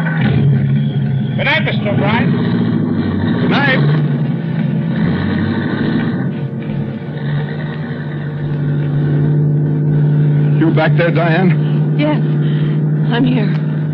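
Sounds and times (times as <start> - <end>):
car engine rumbling while pulling away and driving: 0.0 - 13.9
faint voices: 1.4 - 2.4, 3.5 - 3.9, 10.5 - 13.6
speech: 1.6 - 2.6, 3.5 - 4.1, 10.7 - 12.4, 13.1 - 13.6.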